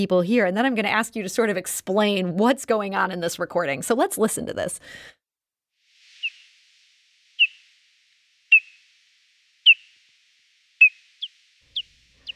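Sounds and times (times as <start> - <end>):
speech: 0.0 - 5.2
hoary bat echolocation calls made audible by a bat detector: 5.9 - 12.3.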